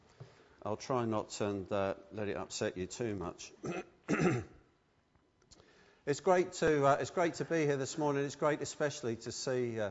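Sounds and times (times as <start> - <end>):
speech: 0.6 - 4.6, 6.1 - 9.8
chesty throat-clearing cough: 3.6 - 4.6.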